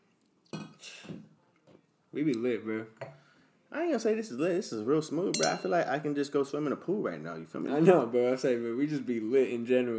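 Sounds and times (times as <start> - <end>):
speech: 2.1 - 3.0, 3.7 - 9.9
glasses clinking in a toast: 5.3 - 5.9.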